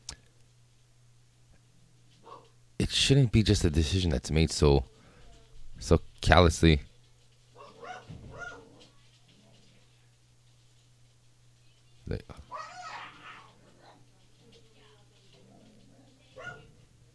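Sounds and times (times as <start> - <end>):
steady low electrical hum: 0.0 - 17.1
dogs barking and yelping: 2.2 - 2.6, 7.5 - 9.0, 12.5 - 14.1, 15.3 - 16.9
speech: 2.9 - 4.9, 5.8 - 6.9, 12.1 - 12.4.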